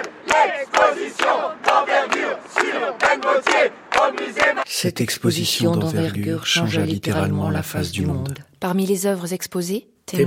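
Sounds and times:
large crowd gathered outside a museum chanting and shouting: 0.0 - 4.7
speech: 4.7 - 10.2.

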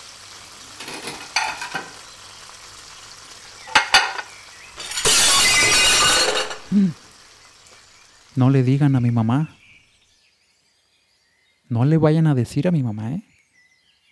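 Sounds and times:
carried plates falling and shattering: 0.8 - 1.9, 3.7 - 6.8
speech: 8.4 - 9.6, 11.7 - 13.3.

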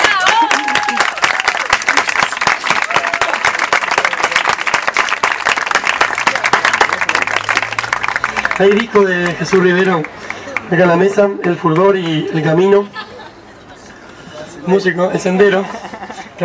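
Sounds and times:
audience applause at an outdoor terrace poetry marathon: 0.0 - 10.7
speech: 8.6 - 13.0, 14.7 - 15.8
laughter: 12.2 - 14.3, 15.3 - 16.4.

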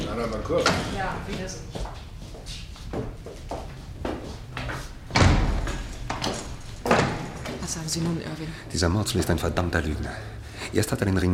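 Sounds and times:
speech: 0.2 - 2.0, 7.9 - 11.3
prison cell door opened and shut by guard: 5.0 - 7.9
heavy prison cell door slam: 5.1 - 7.6.

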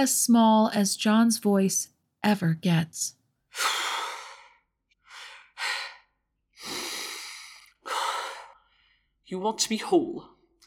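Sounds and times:
speech: 0.0 - 3.8, 9.3 - 10.4
man breathing heavily after exertion: 3.5 - 9.2.

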